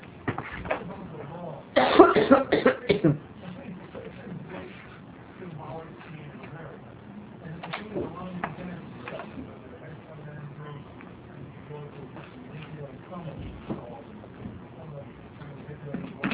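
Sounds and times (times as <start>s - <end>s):
faint murmur: 0.0s - 16.3s
harsh coughs: 1.8s - 3.2s.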